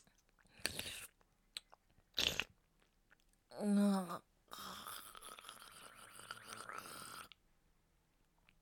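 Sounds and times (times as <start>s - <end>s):
slurping and chewing rich springy ramen: 0.4s - 3.2s, 4.5s - 7.4s.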